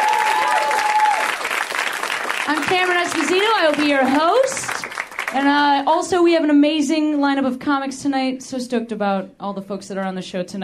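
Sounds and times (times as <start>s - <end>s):
live audience applause in a comedy theater: 0.0s - 5.4s
speech: 2.5s - 4.7s, 5.3s - 10.6s.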